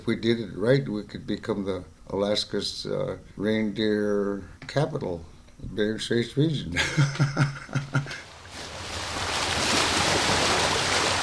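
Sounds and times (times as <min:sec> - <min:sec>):
speech: 0:00.0 - 0:08.2
laughter: 0:06.8 - 0:08.2
ocean waves on a shoreline in the Bering Strait region of Alaska: 0:08.1 - 0:11.2.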